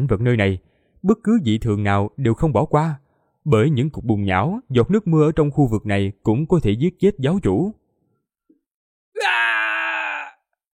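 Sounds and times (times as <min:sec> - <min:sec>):
speech: 0:00.0 - 0:07.8
terrified cultivator wailing scream: 0:09.2 - 0:10.6.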